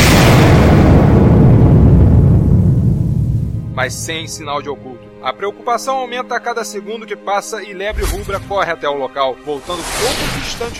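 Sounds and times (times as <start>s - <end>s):
massive bomb blast: 0.0s - 4.6s
speech: 3.8s - 10.7s.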